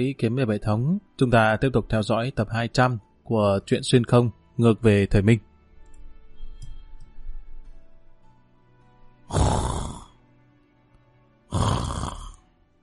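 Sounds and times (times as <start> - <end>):
speech: 0.0 - 5.5
snoring: 9.3 - 10.2, 11.5 - 12.4.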